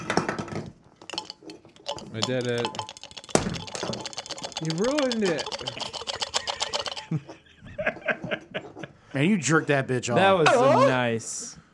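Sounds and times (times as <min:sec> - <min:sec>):
metal drink can handled and tapped: 0:00.0 - 0:07.2
speech: 0:02.1 - 0:02.8, 0:04.6 - 0:05.8, 0:07.1 - 0:07.3, 0:09.2 - 0:11.5
laughter: 0:05.6 - 0:09.0, 0:10.2 - 0:11.1.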